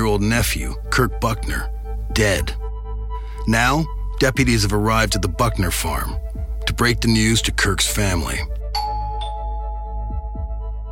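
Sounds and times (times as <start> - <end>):
speech: 0.1 - 2.6, 3.4 - 8.5
doorbell chiming at a very small farmhouse: 8.7 - 10.7.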